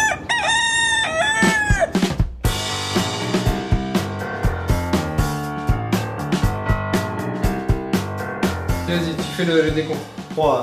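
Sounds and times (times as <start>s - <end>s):
rooster crowing: 0.0s - 2.1s
upbeat rhythmic music track with a steady beat: 1.4s - 10.6s
speech: 9.4s - 10.6s.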